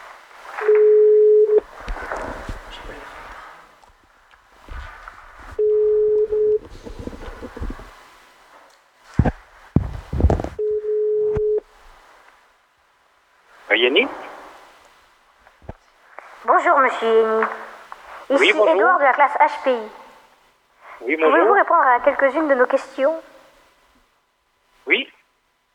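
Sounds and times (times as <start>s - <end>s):
faint noise: 0.0s - 25.7s
telephone ringback tone: 0.6s - 1.6s, 5.6s - 6.7s, 10.6s - 11.6s
speech: 17.0s - 17.6s, 18.3s - 20.0s, 21.1s - 23.3s.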